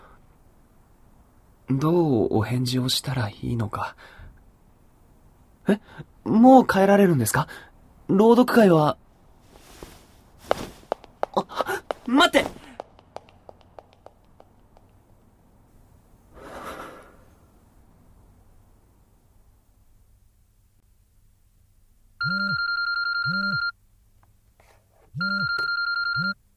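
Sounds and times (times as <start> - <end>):
speech: 1.7 - 4.2, 5.6 - 9.0, 11.4 - 12.6
soft taps: 9.6 - 15.0
telephone ringing with bright electronic ring bursts for an incoming call: 22.2 - 23.8, 25.2 - 26.4.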